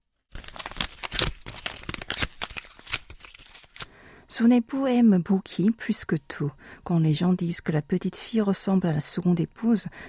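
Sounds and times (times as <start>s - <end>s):
photo being torn into pieces: 0.3s - 3.9s
speech: 4.4s - 10.0s.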